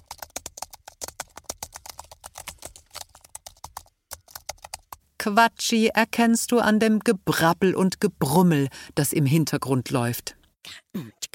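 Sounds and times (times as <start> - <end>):
typing on a computer keyboard: 0.0 - 5.0
speech: 5.2 - 11.3.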